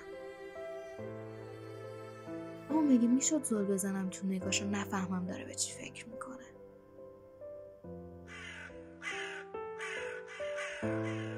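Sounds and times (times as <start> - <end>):
sustained piano notes playing a slow melody: 0.0 - 11.3
speech: 2.7 - 6.6
crows cawing: 8.2 - 11.3.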